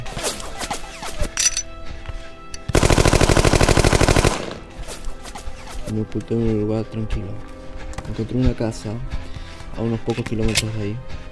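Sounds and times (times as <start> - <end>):
bullets whizzing past: 0.0 - 1.5, 4.7 - 6.0
gunfire: 2.7 - 4.8
speech: 5.9 - 7.5, 8.1 - 9.2, 9.8 - 11.1.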